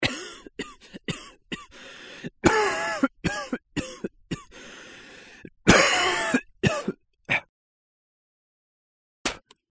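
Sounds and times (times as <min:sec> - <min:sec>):
person coughing: 0:00.0 - 0:01.8, 0:02.4 - 0:04.6, 0:05.7 - 0:07.5.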